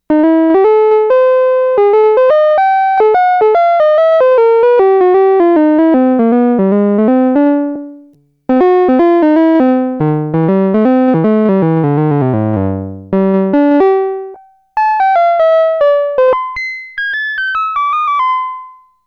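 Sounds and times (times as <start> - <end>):
synthesizer piano sound: 0.1 - 18.9.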